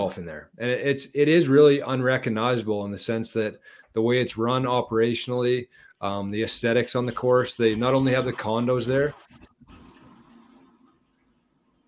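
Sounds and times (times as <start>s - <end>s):
speech: 0.0s - 9.5s
toilet flushing: 6.8s - 11.4s.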